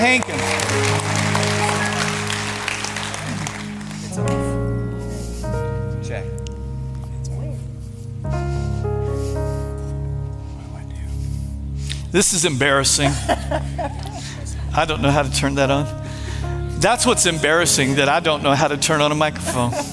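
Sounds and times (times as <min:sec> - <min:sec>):
speech: 0:00.0 - 0:01.2, 0:12.1 - 0:14.0, 0:14.8 - 0:16.0, 0:16.8 - 0:19.9
crowd applause: 0:00.0 - 0:04.7
sustained organ-like musical tones: 0:00.0 - 0:19.9
laughter: 0:12.7 - 0:15.1, 0:17.8 - 0:19.9.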